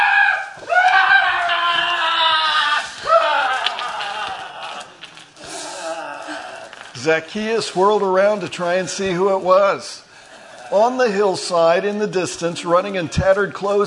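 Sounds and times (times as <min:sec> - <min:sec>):
man screaming in agony: 0:00.0 - 0:06.8
speech: 0:07.0 - 0:10.1, 0:10.7 - 0:13.8.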